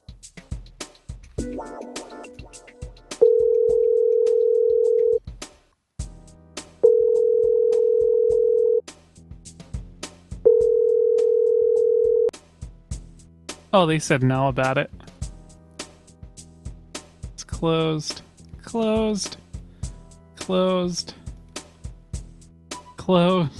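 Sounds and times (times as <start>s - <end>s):
speech: 1.6s - 1.9s, 13.7s - 15.0s, 17.6s - 19.4s, 20.5s - 21.2s, 23.1s - 23.5s
telephone ringback tone on an outgoing call: 3.2s - 5.2s, 6.8s - 8.8s, 10.5s - 12.3s.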